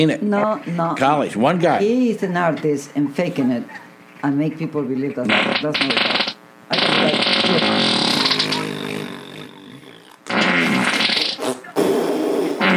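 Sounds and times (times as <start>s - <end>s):
speech: 0.0s - 8.0s
loud fart-like noises: 5.2s - 12.7s.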